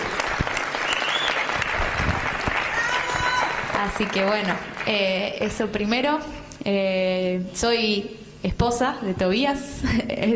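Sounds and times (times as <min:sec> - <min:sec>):
scattered cheering voices: 0:00.0 - 0:04.6
loud applause from a large audience: 0:00.0 - 0:05.0
speech: 0:03.8 - 0:10.3.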